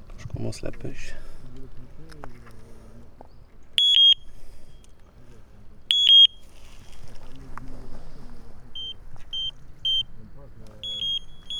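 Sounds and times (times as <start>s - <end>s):
speech: 0.4s - 1.3s
electronic bite alarm on a fishing rod beeping: 3.8s - 4.9s, 5.9s - 6.6s, 8.8s - 11.5s.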